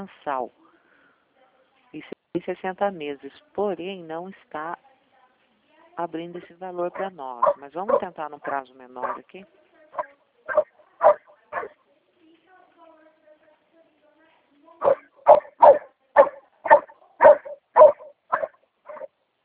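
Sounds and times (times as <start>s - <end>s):
speech: 0.0s - 0.6s, 1.9s - 4.9s, 6.0s - 10.6s
dog barking loudly: 6.9s - 9.2s, 10.0s - 11.8s, 14.8s - 19.4s.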